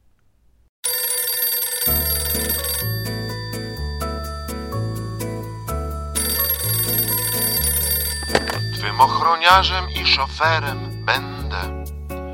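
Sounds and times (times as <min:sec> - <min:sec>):
telephone ringing with a bright electronic trill: 0:00.8 - 0:11.7
upbeat song with steady bass line and drum beat: 0:02.8 - 0:06.9, 0:08.2 - 0:12.3
speech: 0:09.0 - 0:11.8.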